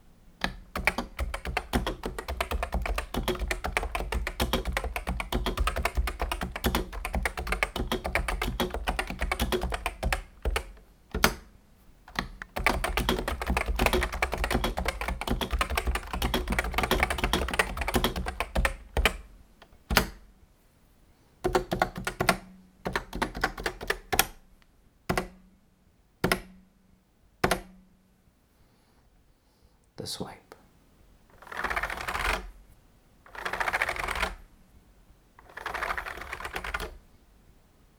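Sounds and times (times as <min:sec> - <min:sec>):
keyboard with stock OEM keycaps typing: 0:00.4 - 0:11.4, 0:12.1 - 0:19.2, 0:21.4 - 0:24.3, 0:31.3 - 0:32.5, 0:33.3 - 0:34.4, 0:35.4 - 0:37.0.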